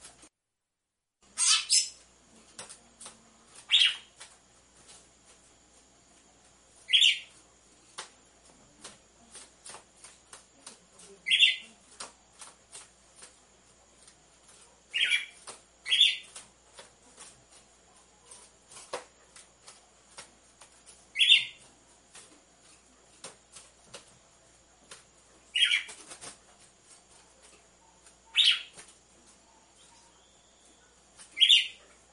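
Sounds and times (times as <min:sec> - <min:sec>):
female red-cowled cardinal chirping: 0:01.3 - 0:02.0, 0:03.6 - 0:04.2, 0:06.8 - 0:07.4, 0:11.2 - 0:11.8, 0:14.9 - 0:16.4, 0:21.1 - 0:21.6, 0:25.5 - 0:26.0, 0:27.8 - 0:28.8, 0:29.4 - 0:32.0.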